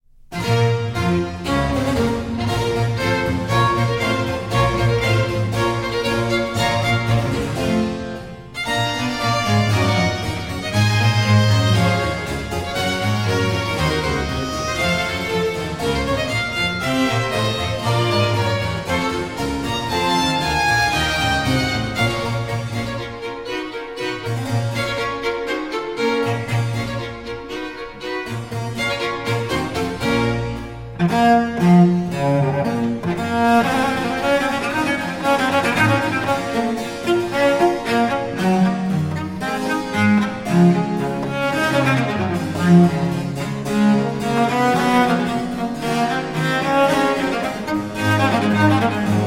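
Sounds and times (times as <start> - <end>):
cello concerto allegro movement: 0.1 - 49.2.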